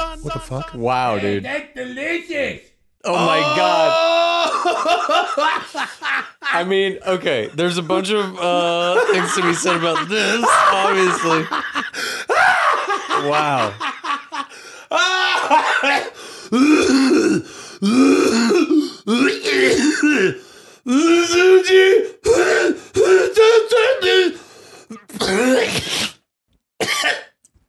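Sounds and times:
speech: 0.2 - 12.3, 13.2 - 13.9, 14.9 - 24.4, 25.1 - 26.0
laughter: 3.1 - 16.2
long loud coughing fit with hacking bursts: 15.6 - 17.5, 18.1 - 20.4, 25.0 - 26.1, 26.8 - 27.6.

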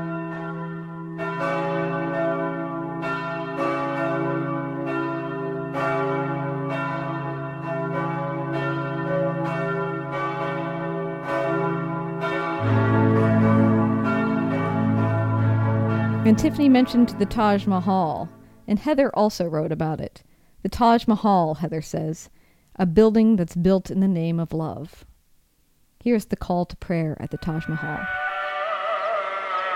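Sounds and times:
large church bells of St. Peter's Basilica pealing in Rome: 0.0 - 18.6, 27.2 - 29.7
speech: 16.3 - 25.1, 26.0 - 28.2.

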